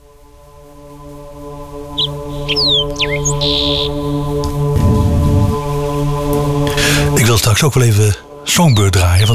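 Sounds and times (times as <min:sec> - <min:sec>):
steady humming musical drone: 0:00.0 - 0:09.3
blackbird whistles: 0:02.0 - 0:04.0
speech: 0:02.0 - 0:04.9, 0:07.2 - 0:09.3.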